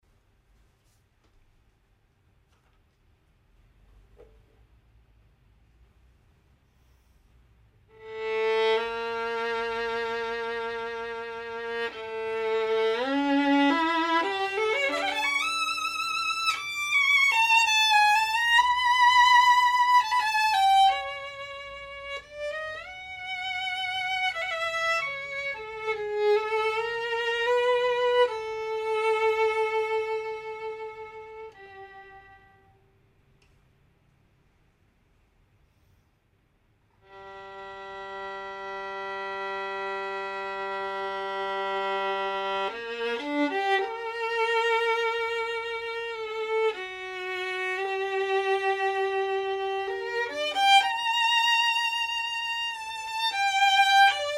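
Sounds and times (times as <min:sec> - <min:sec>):
classic professional violin: 0:07.8 - 0:33.0, 0:37.0 - 0:54.3.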